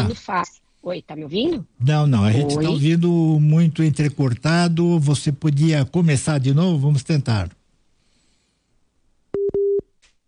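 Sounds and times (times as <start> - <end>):
speech: 0.1 - 7.6
telephone busy signal after a dropped call: 9.4 - 9.8.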